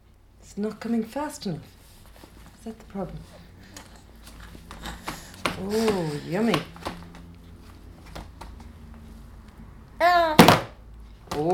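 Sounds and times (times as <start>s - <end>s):
speech: 0.5s - 1.8s, 2.6s - 3.4s, 5.6s - 6.8s
child's brief voiced sound: 10.0s - 10.5s.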